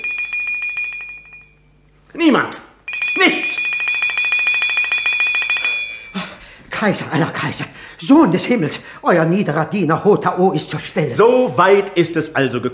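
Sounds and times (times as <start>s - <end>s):
bell rung by pulling a bell cord: 0.0s - 1.8s, 2.9s - 6.4s
speech: 2.2s - 3.7s, 6.8s - 12.7s.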